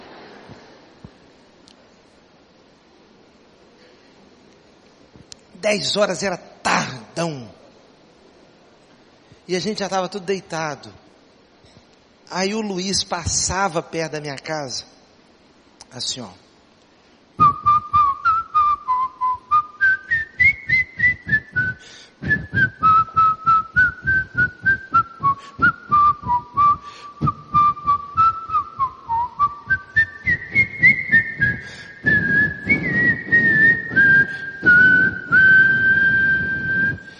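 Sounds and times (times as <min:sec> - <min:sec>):
speech: 0:05.6 - 0:06.5, 0:09.5 - 0:11.0, 0:12.3 - 0:15.0, 0:15.9 - 0:16.4
man whistling a melody while walking along the street: 0:17.4 - 0:37.1.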